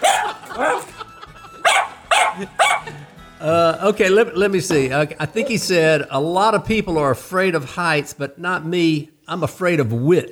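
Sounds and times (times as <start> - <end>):
dog barking: 0.0 - 1.0, 1.6 - 3.0
laughter: 0.0 - 5.7
speech: 3.4 - 10.2.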